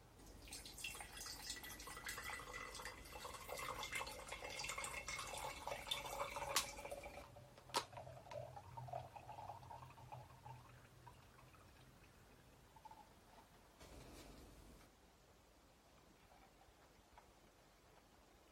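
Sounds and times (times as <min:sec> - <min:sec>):
water dripping: 0:00.2 - 0:13.6.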